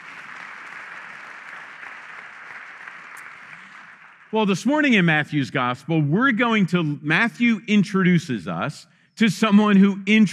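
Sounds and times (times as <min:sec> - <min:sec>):
audience applause after a prayer: 0:00.0 - 0:04.6
speech: 0:04.3 - 0:10.3.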